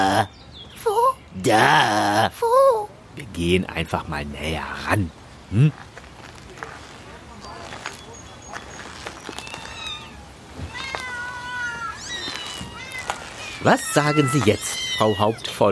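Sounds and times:
speech: 0.2s - 0.5s, 1.4s - 5.9s, 13.6s - 15.6s
shuffling movement: 5.2s - 15.6s
several cats meowing: 7.6s - 15.6s.

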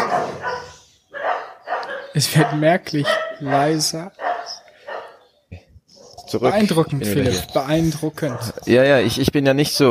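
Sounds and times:
dog barking: 0.0s - 5.3s, 8.2s - 8.7s
speech: 2.2s - 4.2s, 6.3s - 9.8s.

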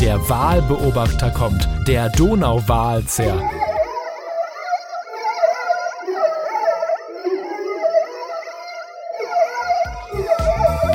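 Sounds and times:
speech: 0.1s - 3.7s
whale song: 3.3s - 10.9s.

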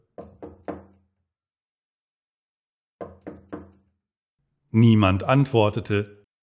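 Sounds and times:
soft knocking on a wooden bedroom door: 0.0s - 1.1s, 3.0s - 4.0s
speech: 4.7s - 6.2s.

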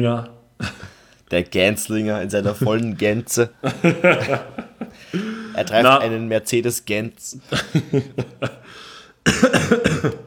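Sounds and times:
speech: 0.0s - 0.7s, 1.3s - 10.2s
laughter: 2.4s - 6.0s, 7.4s - 8.8s
harsh coughing fit: 5.0s - 5.8s, 7.5s - 10.2s.

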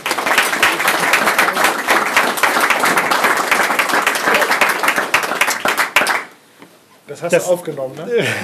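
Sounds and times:
loud sustained audience applause: 0.0s - 6.4s
speech: 7.2s - 8.4s.

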